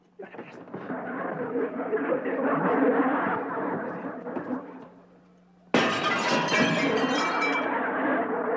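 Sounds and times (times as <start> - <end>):
laughter: 0.3 - 4.9, 6.7 - 8.5
glass shards tinkling: 5.8 - 7.7
house window glass shattering as it is broken with a broom: 5.8 - 7.7.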